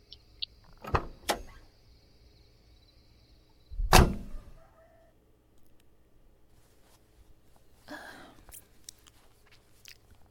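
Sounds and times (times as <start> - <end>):
faint steady whine: 0.0 - 10.2
door being unlocked: 0.7 - 1.6, 3.9 - 4.3.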